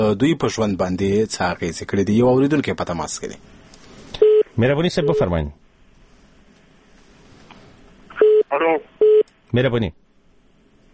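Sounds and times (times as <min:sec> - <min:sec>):
speech: 0:00.0 - 0:03.6, 0:04.6 - 0:05.6, 0:09.5 - 0:10.0
telephone line beep as a call is cut off: 0:04.2 - 0:05.3, 0:08.2 - 0:09.2.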